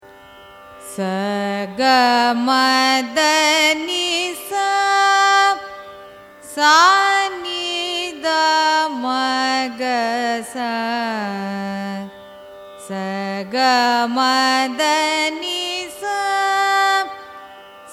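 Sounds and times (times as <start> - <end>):
Carnatic raga arohanam and avarohanam scale: 0.0 - 17.9.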